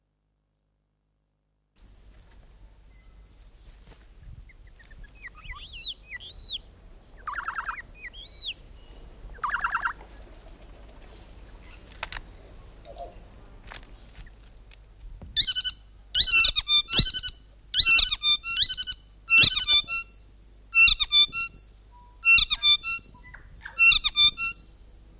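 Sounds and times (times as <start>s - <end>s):
North Island saddleback singing rich repeated chattering notes: 4.5s - 13.2s, 15.4s - 20.1s, 20.8s - 25.1s.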